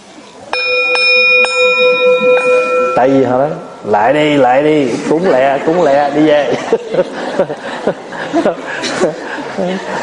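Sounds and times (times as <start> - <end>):
temple bell struck with a mallet: 0.5 - 4.4
speech: 3.0 - 10.0
laughter: 4.8 - 10.0.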